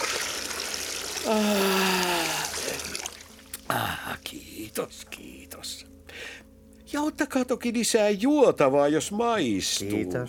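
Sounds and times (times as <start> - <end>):
hot water running into a bath: 0.0 - 3.6
speech: 1.2 - 1.7, 3.7 - 10.2.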